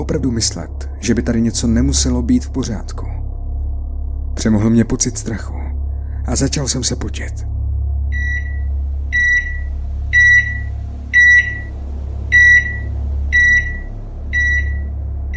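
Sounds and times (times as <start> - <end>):
speech: 0.0 - 3.1, 4.4 - 5.6, 6.3 - 7.5
low microwave oven appliance hum: 0.0 - 15.3
microwave oven display beeping as it resets: 8.1 - 15.3.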